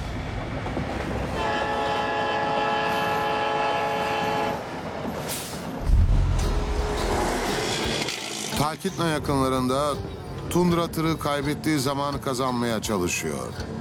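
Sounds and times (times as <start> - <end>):
heavy rumble and clatter of train wheels on rails: 0.0 - 9.2
train horn blast: 1.3 - 4.7, 6.1 - 8.1
speech: 8.7 - 13.7.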